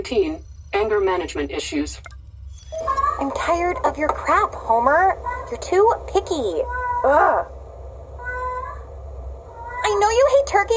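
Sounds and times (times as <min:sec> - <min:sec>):
speech: 0:00.0 - 0:02.1, 0:02.7 - 0:07.5, 0:09.9 - 0:10.7
low rumble: 0:00.0 - 0:10.7
cat meowing: 0:06.6 - 0:07.2, 0:08.2 - 0:08.9, 0:09.5 - 0:10.0.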